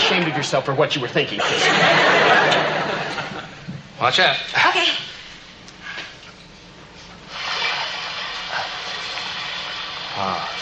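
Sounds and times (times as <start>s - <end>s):
speech: 0.1s - 3.2s, 4.0s - 5.1s, 10.2s - 10.5s
laughter: 1.4s - 3.7s
steady breathy hiss of steam: 7.3s - 10.5s.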